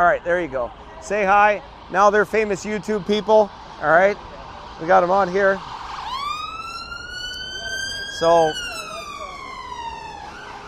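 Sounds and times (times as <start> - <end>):
speech: 0.0 - 5.7, 8.2 - 8.7
low traffic rumble: 0.0 - 10.6
ambulance siren passing along a street in England: 0.5 - 10.6.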